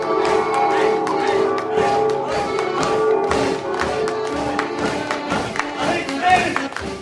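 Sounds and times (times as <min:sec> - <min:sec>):
church bells ringing during an open-air theatre performance in Thun: 0:00.0 - 0:05.0
crowd noise in a medieval prison courtyard in Thun: 0:00.0 - 0:07.0.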